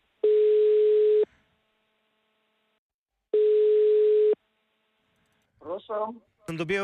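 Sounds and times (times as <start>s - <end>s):
telephone ringback tones on a phone line: 0.2s - 1.3s, 3.4s - 4.4s
speech: 5.9s - 6.8s.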